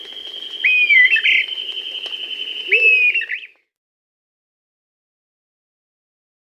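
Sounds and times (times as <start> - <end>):
Dusky-tailed flatbill giving slurred whistled phrases in Bolivia and Peru: 0.0 - 3.6.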